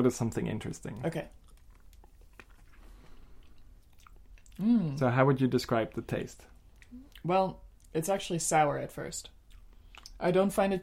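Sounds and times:
speech: 0.0 - 1.4, 4.6 - 9.4, 10.2 - 10.8
chewing real black licorice candy: 1.3 - 4.6, 9.4 - 10.2.

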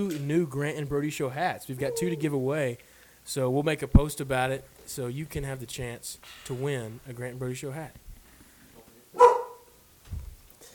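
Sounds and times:
speech: 0.0 - 8.0
dog huffing softly: 1.8 - 2.4
dog barking excitedly: 9.2 - 9.7.

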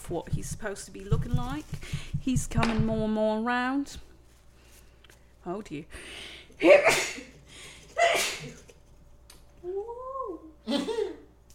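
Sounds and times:
speech: 0.1 - 4.1, 5.4 - 7.3
person sneezing: 6.7 - 7.4, 8.0 - 8.6.

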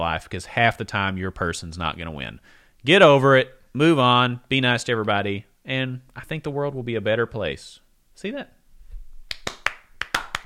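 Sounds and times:
speech: 0.0 - 8.6
fast hand clapping: 9.3 - 10.4.

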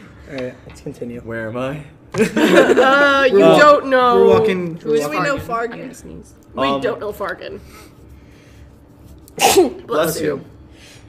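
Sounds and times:
faint hum: 0.0 - 11.0
speech: 0.3 - 8.0, 9.4 - 10.5
laughter: 2.2 - 3.4
person sneezing: 9.4 - 9.9.

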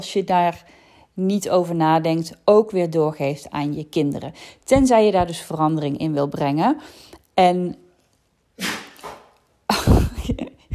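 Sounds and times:
speech: 0.0 - 7.8
dog sneezing and snuffling: 8.6 - 9.3.

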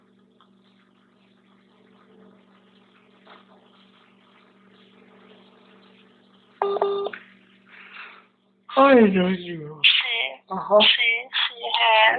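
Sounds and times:
low steady electrical hum: 0.0 - 12.1
telephone touch-tone keypad beeps: 6.6 - 7.1
speech: 8.8 - 9.9, 10.5 - 11.0.

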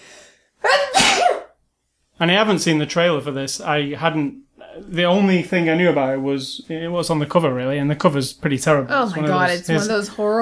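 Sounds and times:
person sneezing: 0.6 - 1.6
speech: 2.2 - 10.4.

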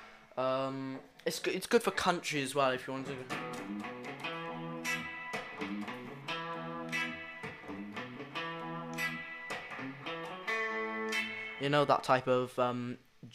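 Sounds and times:
speech: 0.4 - 3.9, 11.6 - 13.3
electric guitar played through its bridge pickup with a quacky tone: 2.7 - 12.0.

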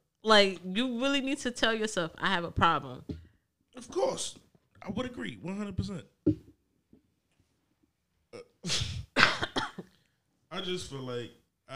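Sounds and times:
speech: 0.2 - 3.2, 3.8 - 6.5, 8.6 - 8.8, 10.6 - 11.7
harsh raspy coughing: 8.4 - 10.0.

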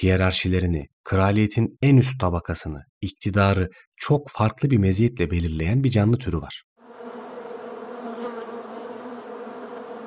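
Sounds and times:
speech: 0.0 - 6.7
dense buzzing of many bees: 6.8 - 10.0.

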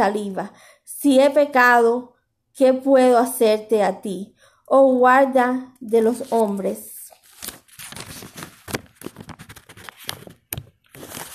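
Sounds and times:
speech: 0.0 - 6.9
sticky thin Bible pages rustling and crinkling as they are turned: 6.0 - 11.3.

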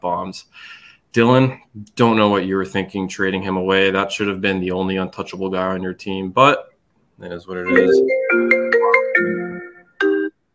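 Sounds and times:
speech: 0.0 - 8.8
bright electronic phone ringtone from a Mac: 7.7 - 10.4.

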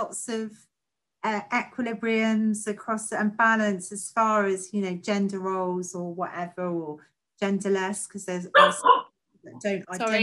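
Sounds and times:
speech: 0.0 - 10.2
dog barking: 8.6 - 9.1.

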